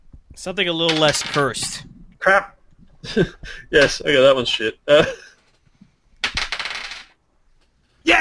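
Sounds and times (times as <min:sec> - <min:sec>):
speech: 0:00.4 - 0:05.3
dice rolling on a table: 0:00.9 - 0:01.8, 0:06.2 - 0:07.2.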